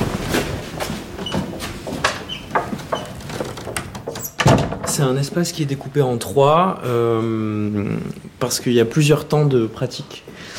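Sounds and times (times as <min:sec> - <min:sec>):
door closing with knocks and rattling clicks in an artist's studio: 0:01.2 - 0:05.2
speech: 0:05.0 - 0:10.5.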